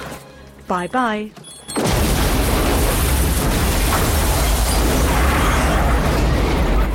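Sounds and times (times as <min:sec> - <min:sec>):
speech: 0:00.7 - 0:01.4
car exploding: 0:01.8 - 0:06.9
fire roaring: 0:02.1 - 0:06.9.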